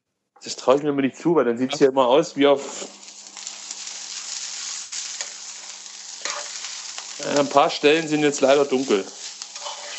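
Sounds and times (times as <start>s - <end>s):
speech: 0.4s - 3.0s, 7.4s - 9.2s
pointed cabbage sizzling in a frying pan: 2.0s - 9.9s.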